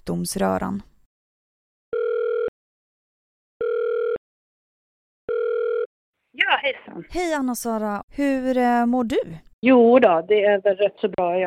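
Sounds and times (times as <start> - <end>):
speech: 0.0 - 0.9, 6.4 - 11.4
telephone ringback tone: 1.9 - 2.5, 3.6 - 4.2, 5.3 - 5.9.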